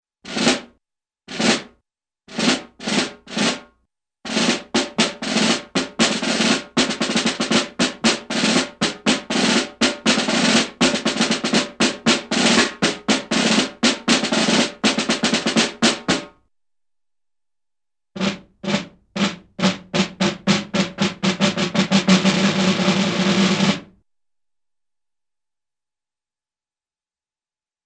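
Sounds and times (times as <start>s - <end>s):
cartoon snare drum beat: 0.3s - 3.7s, 4.3s - 16.4s, 18.2s - 23.9s.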